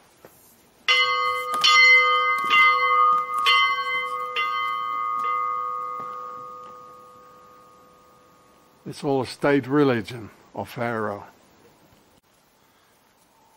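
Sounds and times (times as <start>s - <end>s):
bell ringing: 0.9s - 8.8s
speech: 8.9s - 11.4s.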